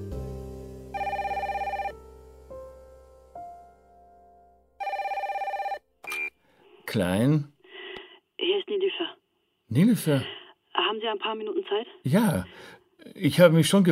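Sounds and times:
telephone ringing with electronic trilling rings from an incoming call: 0:01.0 - 0:02.0, 0:04.8 - 0:06.3
speech: 0:06.9 - 0:07.5, 0:08.8 - 0:10.4, 0:11.0 - 0:13.9.

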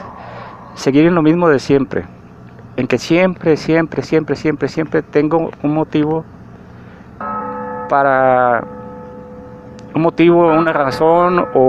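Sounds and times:
church bell ringing at a nearby temple: 0:00.0 - 0:02.4, 0:07.2 - 0:11.6
low rumble: 0:00.0 - 0:11.6
speech: 0:00.8 - 0:02.2, 0:02.8 - 0:06.3, 0:07.9 - 0:08.8, 0:09.9 - 0:11.6.

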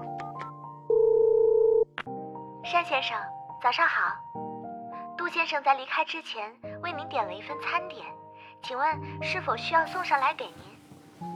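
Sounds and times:
telephone dialing beeps for a call to a hotel front desk: 0:00.9 - 0:02.0
speech: 0:02.7 - 0:04.5, 0:05.3 - 0:10.8.

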